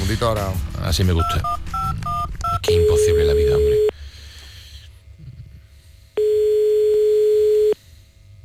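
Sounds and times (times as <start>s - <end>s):
speech: 0.1s - 1.8s, 2.6s - 3.7s
telephone ringback tone: 1.2s - 3.9s, 6.2s - 7.8s.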